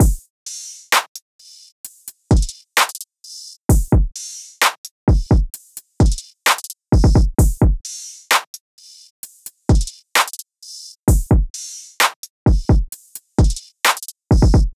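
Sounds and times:
130 BPM hip hop drum loop: 0:00.0 - 0:14.7.

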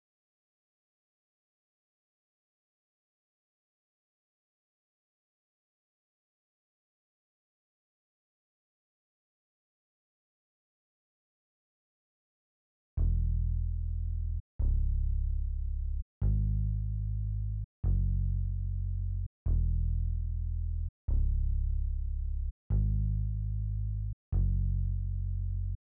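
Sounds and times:
bass stem in G sharp minor: 0:13.0 - 0:25.8.

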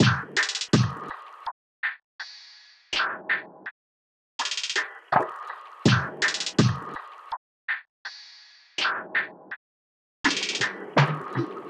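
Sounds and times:
percussion loop at 164 BPM: 0:00.0 - 0:03.7, 0:04.4 - 0:09.6, 0:10.2 - 0:11.6.

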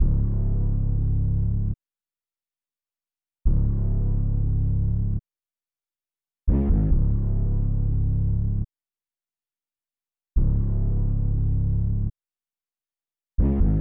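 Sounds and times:
139 BPM C# minor bass melody loop: 0:00.0 - 0:01.8, 0:03.5 - 0:05.2, 0:06.6 - 0:08.7, 0:10.4 - 0:12.1, 0:13.4 - 0:13.7.

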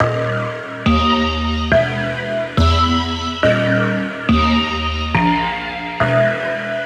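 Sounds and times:
riddim synth loop in D# at 140: 0:00.0 - 0:06.7.

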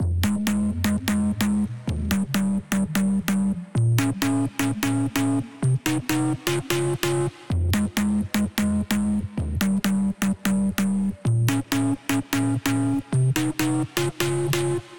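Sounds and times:
house music synth chords in F minor: 0:00.1 - 0:14.9.

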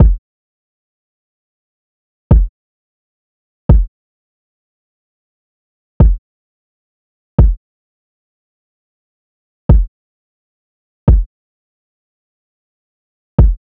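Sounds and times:
kick drum loop at 130 BPM: 0:00.0 - 0:00.2, 0:02.3 - 0:02.5, 0:03.7 - 0:03.9, 0:06.0 - 0:06.2, 0:07.4 - 0:07.6, 0:09.7 - 0:09.9, 0:11.1 - 0:11.3, 0:13.4 - 0:13.6.

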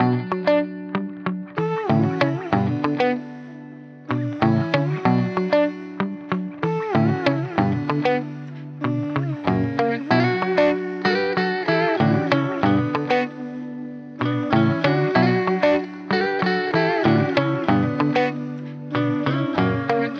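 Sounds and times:
guitar playing in B minor: 0:00.0 - 0:20.1.

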